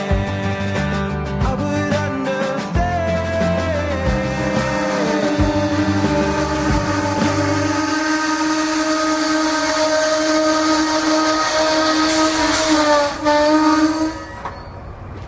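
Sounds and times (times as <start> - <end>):
rushing rumble of train wheels and engine: 0.0 - 15.2
train whistle blast: 4.3 - 14.8.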